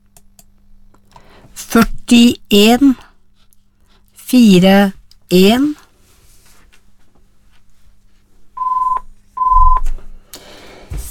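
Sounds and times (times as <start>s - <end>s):
speech: 1.6s - 3.1s, 4.3s - 5.8s
short electronic telephone rings: 8.6s - 9.8s.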